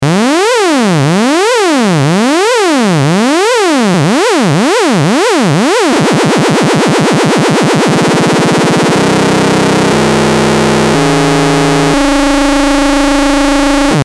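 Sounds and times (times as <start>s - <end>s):
sawtooth LFO synth modulation: 0.0s - 14.0s.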